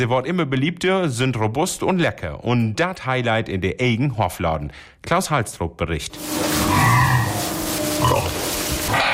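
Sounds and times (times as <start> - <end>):
speech: 0.0 - 7.1, 8.0 - 9.0
young Hungarian woolly pig grunting in a farm stall: 6.6 - 8.5.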